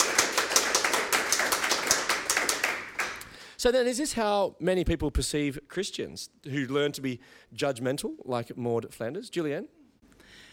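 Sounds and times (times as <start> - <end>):
small group applauding: 0.0 - 3.4
speech: 3.6 - 9.8.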